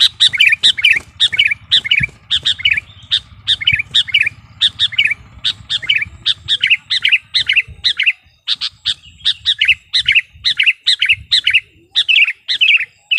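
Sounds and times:
low hum: 0.0s - 7.9s
sooty-headed bulbul song: 0.0s - 13.1s.

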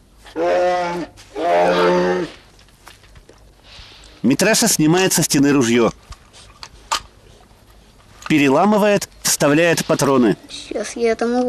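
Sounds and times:
cartoon bear roaring while climbing a ladder: 0.3s - 2.4s
speech: 4.3s - 6.1s, 8.3s - 11.4s.

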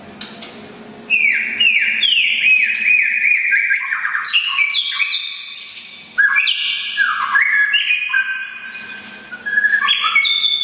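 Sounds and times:
Oriental magpie-robin song: 1.1s - 10.6s.

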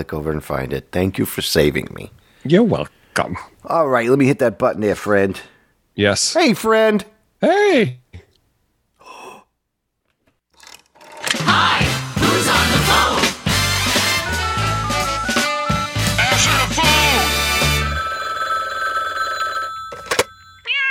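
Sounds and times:
speech: 0.0s - 8.0s
busy music: 11.3s - 18.2s
telephone ringing with a warbling electronic trill: 16.8s - 20.8s.

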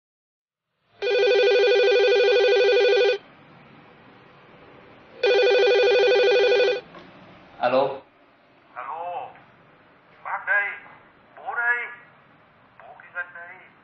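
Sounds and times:
electronic telephone ringing with an incoming call: 1.0s - 3.2s, 5.2s - 6.9s.

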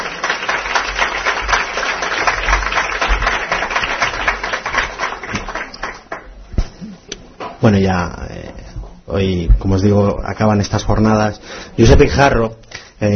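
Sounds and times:
audience applause at the close of an event's session: 0.0s - 6.3s
speech: 7.6s - 8.2s, 9.1s - 13.1s.

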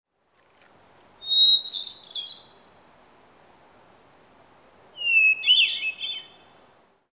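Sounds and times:
low background hiss: 0.1s - 7.1s
bird chirping: 1.2s - 2.7s, 5.0s - 6.6s.

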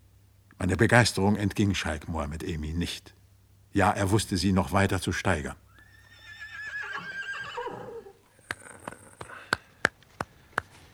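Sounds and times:
speech: 0.6s - 5.6s
black stallion neighing: 5.7s - 9.6s
hooves clopping on a hard surface: 8.1s - 10.9s.

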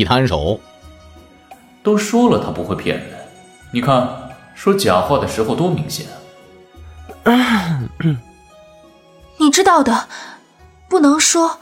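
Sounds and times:
speech: 0.0s - 0.7s, 1.8s - 6.2s, 7.2s - 8.3s, 9.4s - 10.3s, 10.9s - 11.5s
person giving a throat-clearing cough: 7.3s - 8.3s.

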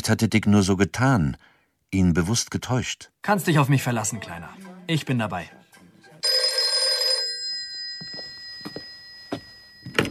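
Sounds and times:
speech: 0.0s - 5.6s
telephone bell ringing: 6.2s - 10.0s.

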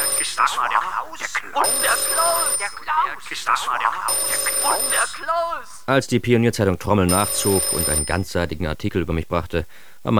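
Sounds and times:
telephone ringing with a bright electronic tone: 0.0s - 5.9s, 7.0s - 8.3s
speech: 0.4s - 10.1s.

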